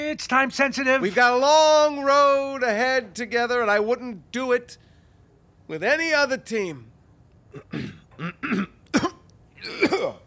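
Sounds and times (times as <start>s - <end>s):
speech: 0.1s - 4.9s, 5.7s - 6.9s, 7.6s - 8.7s
man clearing his throat: 7.5s - 10.2s
man coughing: 7.5s - 10.2s.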